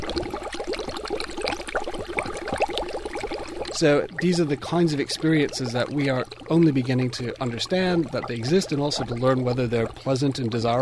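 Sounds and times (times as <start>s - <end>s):
liquid bubbling in a building's algae bioreactor panels: 0.0s - 10.8s
speech: 3.8s - 10.8s.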